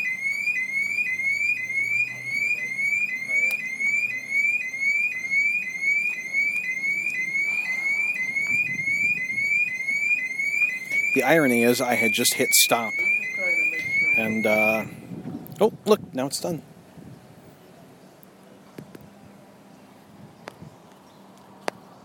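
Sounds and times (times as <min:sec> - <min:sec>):
car alarm going off: 0:00.0 - 0:15.0
speech: 0:11.2 - 0:13.1, 0:14.2 - 0:15.0, 0:15.6 - 0:16.7.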